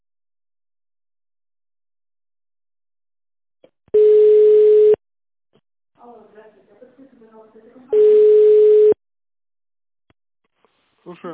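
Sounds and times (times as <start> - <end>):
telephone line tone while a call is being connected: 4.0 - 5.0, 8.0 - 9.0.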